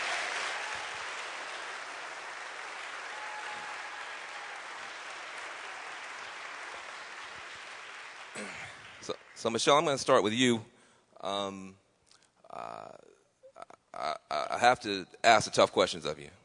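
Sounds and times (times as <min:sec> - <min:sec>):
audience applause: 0:00.0 - 0:09.5
speech: 0:08.4 - 0:11.8, 0:14.0 - 0:16.4.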